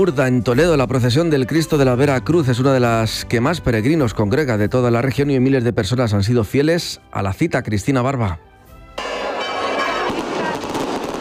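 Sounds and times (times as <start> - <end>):
speech: 0.0 - 9.1
church bells pealing: 9.0 - 10.6
firework rockets with sharp bangs and crackling bursts: 9.0 - 11.1.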